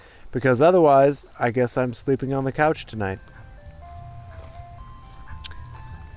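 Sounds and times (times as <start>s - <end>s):
speech: 0.3s - 3.3s
low rumble of traffic or engine noise: 1.4s - 6.1s
ice cream truck jingle: 2.6s - 6.1s.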